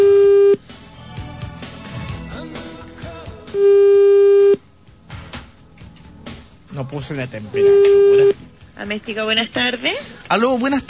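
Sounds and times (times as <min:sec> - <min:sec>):
telephone busy signal on a call to a water-heater repair shop: 0:00.0 - 0:00.6, 0:03.6 - 0:04.6, 0:07.6 - 0:08.4
speech: 0:07.0 - 0:10.8.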